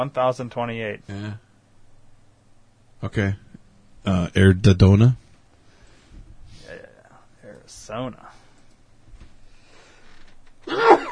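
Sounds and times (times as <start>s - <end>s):
speech: 0.0s - 1.4s, 3.0s - 5.2s, 7.9s - 8.4s
person sneezing: 10.7s - 11.1s.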